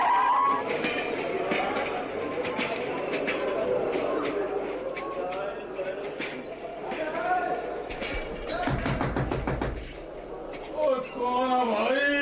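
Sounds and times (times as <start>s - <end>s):
ongoing voices and chatter: 0.2s - 12.1s
sharp rapid knocks on a door: 8.6s - 10.0s.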